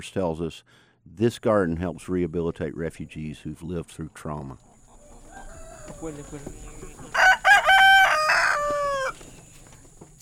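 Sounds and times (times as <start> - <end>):
speech: 0.0 - 4.7, 5.9 - 7.2
faint farmyard background: 0.0 - 10.2
hens clucking while being fed in a community garden in Comer Georgia: 4.4 - 10.1
rooster crowing in a community garden in Comer Georgia: 5.0 - 9.4.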